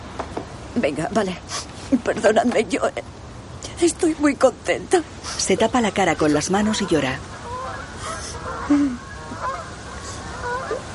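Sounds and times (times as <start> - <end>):
speech: 0.2 - 3.2, 3.8 - 7.3, 8.7 - 9.4
flock of ducks honking while flying past in formation: 5.5 - 10.9.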